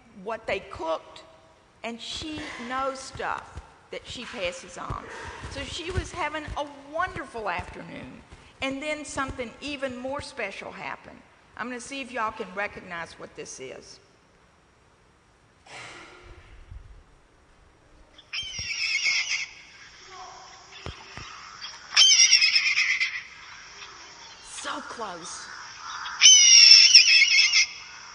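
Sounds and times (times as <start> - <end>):
faint hiss: 0.0 - 28.1
speech: 0.2 - 14.0, 25.0 - 25.5
red-tailed hawk giving raspy screams: 18.3 - 28.1.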